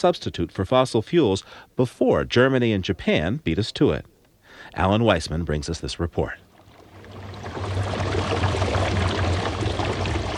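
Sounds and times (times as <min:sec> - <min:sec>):
speech: 0:00.0 - 0:06.4
water bubbling in an electrolyzer splitting water: 0:06.6 - 0:10.3.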